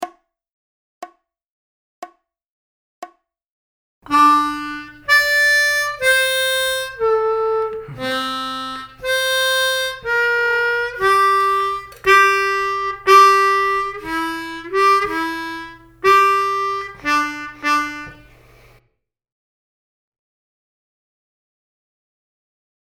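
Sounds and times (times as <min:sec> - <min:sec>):
harmonica licks: 0:04.1 - 0:18.8.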